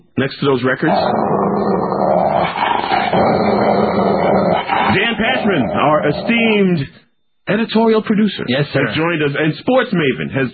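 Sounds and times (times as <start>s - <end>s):
speech: 0.2s - 10.5s
dog growling and snarling: 0.8s - 6.6s.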